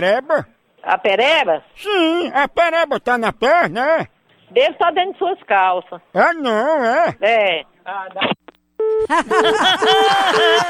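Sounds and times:
speech: 0:00.0 - 0:10.6
telephone busy tone after a call is hung up: 0:08.8 - 0:09.6
laughter: 0:09.0 - 0:10.6.

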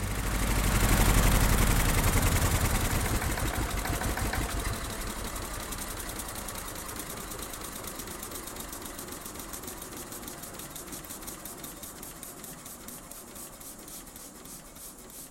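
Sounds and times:
small platform truck diesel engine running: 0:00.0 - 0:10.6.

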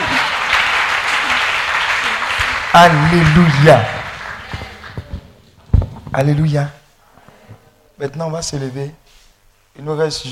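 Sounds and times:
church congregation applauding during a service: 0:00.0 - 0:05.1
speech: 0:02.8 - 0:04.0, 0:06.2 - 0:06.8, 0:08.0 - 0:09.0, 0:09.8 - 0:10.3.

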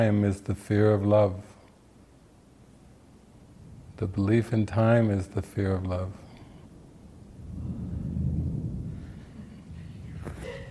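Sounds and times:
speech: 0:00.0 - 0:01.5, 0:04.0 - 0:06.2
faint hiss: 0:00.0 - 0:10.7
rolling thunder: 0:03.5 - 0:04.2, 0:06.6 - 0:10.7.

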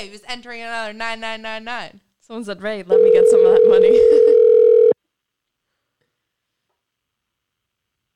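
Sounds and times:
speech: 0:00.0 - 0:04.6
outgoing phone call ringing tone: 0:02.9 - 0:05.0
laughter: 0:03.8 - 0:04.5.

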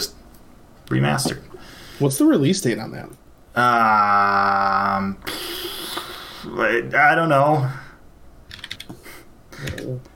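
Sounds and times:
speech: 0:00.9 - 0:05.5, 0:06.4 - 0:07.8
typing on a computer keyboard: 0:08.5 - 0:09.0.

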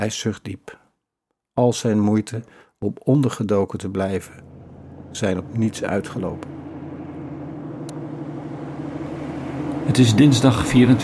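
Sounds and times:
speech: 0:00.0 - 0:00.8, 0:01.6 - 0:04.5, 0:05.2 - 0:06.6, 0:09.9 - 0:11.0
military truck engine idling at a city villa: 0:04.2 - 0:11.0.

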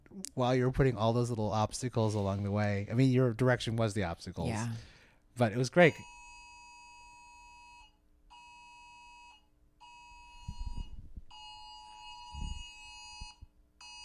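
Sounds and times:
speech: 0:00.4 - 0:06.1
phone emergency broadcast test alert tone: 0:05.8 - 0:14.0.

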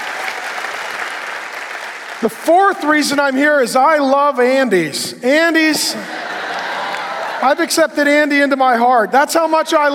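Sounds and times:
crowd applauding a pastor: 0:00.0 - 0:02.4, 0:06.2 - 0:07.6
speech: 0:02.2 - 0:06.2, 0:07.4 - 0:09.9
laughter: 0:05.8 - 0:07.9.

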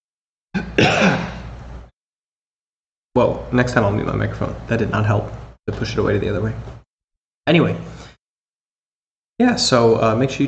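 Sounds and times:
rough raspy cough: 0:00.6 - 0:01.5
throat clearing: 0:00.6 - 0:01.5
speech: 0:03.2 - 0:06.8, 0:07.5 - 0:08.0, 0:09.4 - 0:10.4.

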